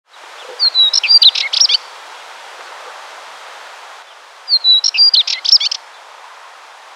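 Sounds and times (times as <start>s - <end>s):
spectacled warbler Curruca Tomillera singing: 0.1s - 1.9s, 4.0s - 6.2s
soft hiss: 0.1s - 6.9s.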